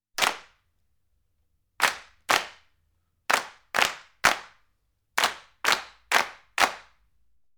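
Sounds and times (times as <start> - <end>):
many people clapping: 0.2 - 0.5, 1.8 - 2.7, 3.3 - 4.6, 5.2 - 7.0.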